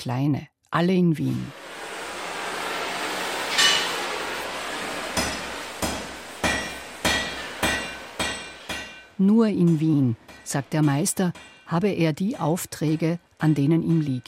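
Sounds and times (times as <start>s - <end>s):
speech: 0.0s - 1.6s, 9.2s - 14.2s
hammer striking iron in a blacksmith's forge in Carinthia: 3.4s - 14.0s.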